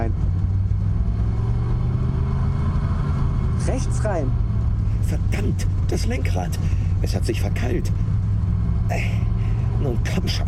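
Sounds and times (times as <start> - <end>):
car engine rumbling as the vehicle drives on after an electrical fault: 0.0 - 10.4
speech: 3.8 - 4.5, 5.1 - 8.1, 8.9 - 10.4.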